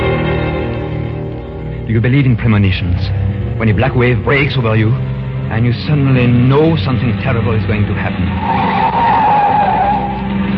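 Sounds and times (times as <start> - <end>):
rumbling car engine: 0.0 - 10.5
speech: 1.9 - 9.0
car tires screeching around a curve: 6.0 - 10.5.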